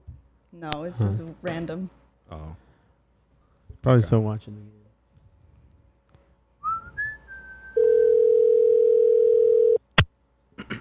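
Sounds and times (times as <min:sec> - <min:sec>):
speech: 0:00.6 - 0:02.6, 0:03.8 - 0:04.8
phone ringing tone as long electronic beep: 0:07.8 - 0:09.8.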